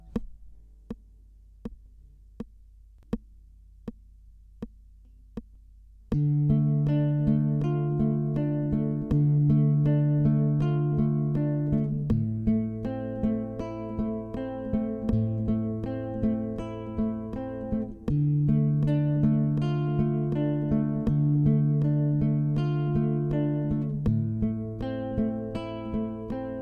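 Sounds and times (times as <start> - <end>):
guitar chord changes: 6.1 - 26.6.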